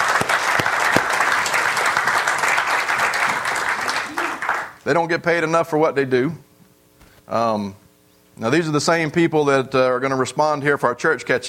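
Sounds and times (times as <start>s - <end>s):
audience applauding: 0.0s - 4.8s
speech: 4.9s - 6.4s, 7.3s - 7.8s, 8.4s - 11.4s.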